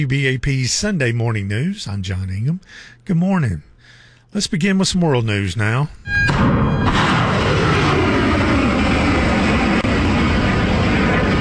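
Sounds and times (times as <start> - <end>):
speech: 0.0 - 3.7, 4.3 - 7.2
missile fired from a United States warship: 6.1 - 11.4.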